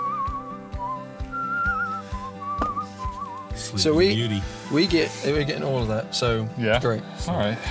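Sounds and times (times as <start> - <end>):
person whistling a tune: 0.0 - 3.6
rhythmic plucked-sounding accompaniment: 0.0 - 6.6
speech: 3.7 - 7.6.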